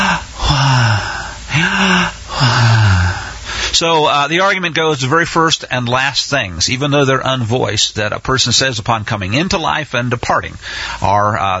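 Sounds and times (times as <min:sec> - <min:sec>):
voice imitating a person's last dying breath with breathy voiced exhalations: 0:00.0 - 0:03.8
speech: 0:01.7 - 0:02.8, 0:03.7 - 0:11.5.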